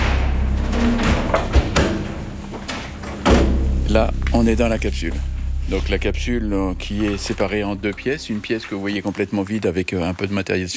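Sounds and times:
dull knocks and clanks: 0.0s - 3.9s
heavy armored metal blast door thudding shut: 0.0s - 4.2s
low rumble: 0.0s - 9.4s
speech: 4.0s - 10.7s.

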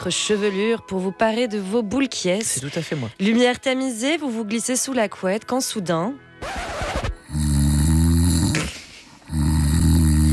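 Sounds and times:
speech: 0.0s - 6.7s
sleeping spouse snoring loudly in bed: 7.2s - 10.3s.

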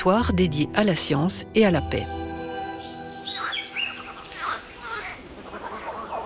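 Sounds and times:
speech: 0.0s - 2.2s
birds chirping and calling in Guiana rainforest: 1.9s - 6.2s
insects buzzing and trilling in Guiana rainforest: 2.2s - 6.2s
faint frog croaks in Guiana rainforest: 3.2s - 6.2s.

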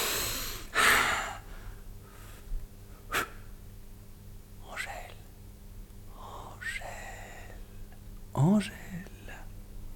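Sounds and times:
person blowing on a sleeping woman to wake her: 0.0s - 1.4s
speech: 8.4s - 8.8s.

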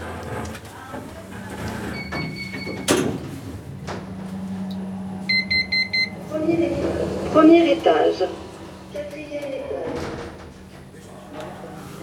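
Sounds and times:
elevator doors closing with a solid thud: 0.0s - 12.0s
low elevator motor hum: 0.2s - 12.0s
elevator electronic alert tone: 5.3s - 6.3s
speech: 6.5s - 8.4s.

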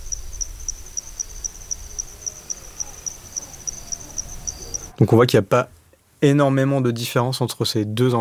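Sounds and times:
cricket chirping at night in the wet season: 0.0s - 5.0s
speech: 5.0s - 8.1s.

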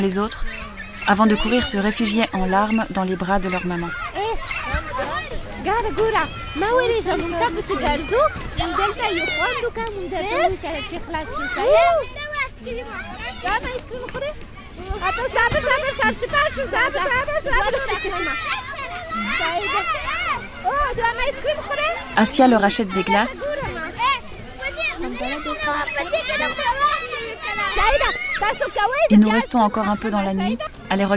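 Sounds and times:
speech: 0.0s - 23.8s, 25.0s - 31.1s
children laughing at a playground: 0.2s - 31.1s.

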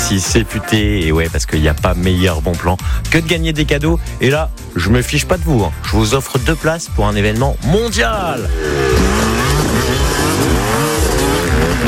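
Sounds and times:
speech: 0.1s - 9.3s
motocross motorcycle engines revving at a motocross event: 8.2s - 11.8s.

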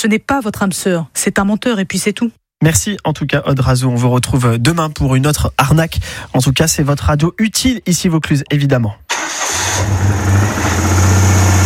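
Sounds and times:
speech: 0.0s - 9.0s
Citroën 2CV car engine running: 9.5s - 11.6s.

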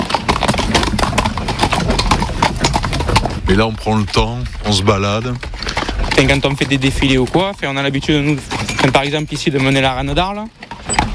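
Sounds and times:
horse hooves clip-clopping: 0.0s - 11.1s
speech: 3.5s - 10.6s.

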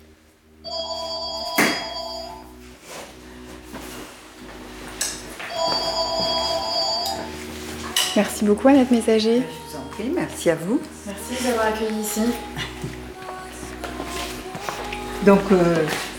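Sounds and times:
telephone ringing with bright trilling electronic ring: 0.6s - 2.5s, 5.4s - 7.5s
speech: 8.2s - 13.0s, 15.2s - 16.1s.

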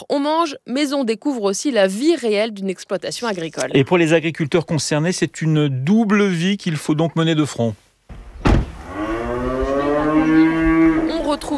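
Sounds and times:
speech: 0.0s - 7.8s, 11.3s - 11.5s
rustling thump: 8.1s - 8.9s
cow mooing on a farm: 8.8s - 11.4s.

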